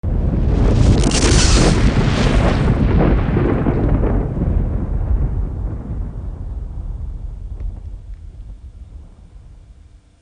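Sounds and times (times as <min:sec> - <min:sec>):
super mortar explosion: 0:00.0 - 0:06.3.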